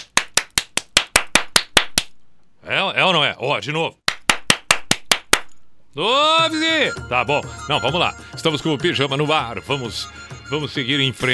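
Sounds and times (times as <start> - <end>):
sharp hand claps outside a house: 0.0 - 2.2, 4.1 - 5.5
speech: 3.0 - 4.0, 6.0 - 11.3.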